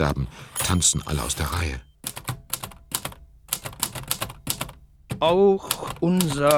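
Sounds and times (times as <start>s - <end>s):
speech: 0.0s - 1.9s, 5.2s - 6.5s
worn mechanical typewriter typing: 2.0s - 6.5s.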